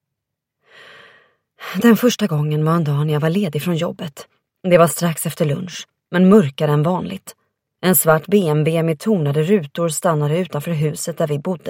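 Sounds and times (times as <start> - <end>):
woman taking a deep breath: 0.6 - 1.5
speech: 1.8 - 11.6.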